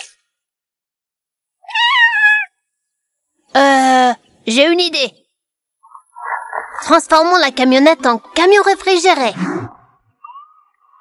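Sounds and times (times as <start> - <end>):
kitten meowing: 1.7 - 2.5
speech: 3.6 - 5.2, 6.9 - 9.6.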